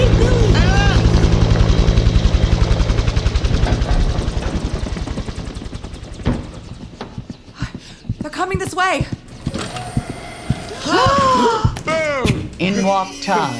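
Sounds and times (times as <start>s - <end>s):
helicopter rotor blades thumping: 0.0s - 12.8s
speech: 8.8s - 9.1s, 12.9s - 13.5s.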